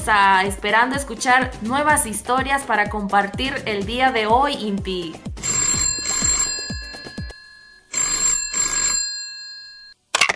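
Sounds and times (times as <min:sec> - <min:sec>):
speech: 0:00.0 - 0:05.3
telephone bell ringing for an incoming call: 0:05.4 - 0:10.0.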